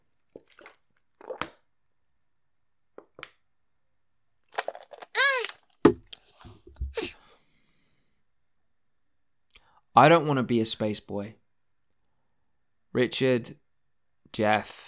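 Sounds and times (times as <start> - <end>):
gulping water from a bottle: 4.6 - 7.1
speech: 10.0 - 11.4, 13.0 - 13.6, 14.3 - 14.8.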